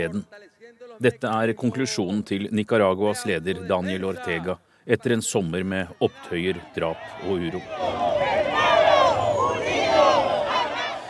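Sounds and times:
speech: 0.0 - 8.3
large crowd cheering and shouting at a political rally: 6.0 - 11.0.

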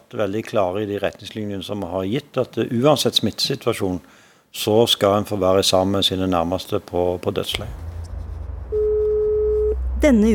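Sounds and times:
speech: 0.1 - 7.9, 10.0 - 10.3
low outdoor rumble: 7.5 - 10.3
door intercom electronic tone at the entrance of a health home in Oslo: 8.7 - 9.8.

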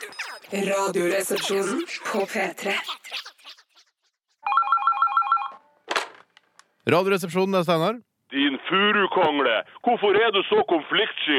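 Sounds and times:
speech: 0.5 - 3.2, 6.9 - 11.3
telephone ringing with an electronic trill: 4.4 - 5.8.

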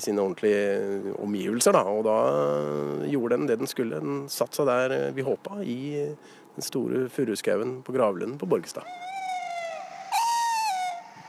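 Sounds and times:
speech: 0.0 - 9.2
tawny owl hooting: 8.8 - 11.2.

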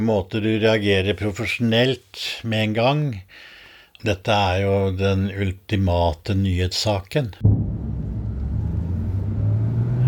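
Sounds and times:
speech: 0.0 - 7.7
car driving too fast at night with engine accelerating: 7.4 - 10.0.

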